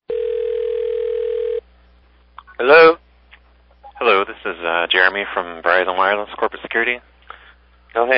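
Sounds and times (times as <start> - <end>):
electronic ringing tone on a phone line: 0.1 - 1.6
speech: 2.6 - 3.0, 4.0 - 7.1, 7.9 - 8.1.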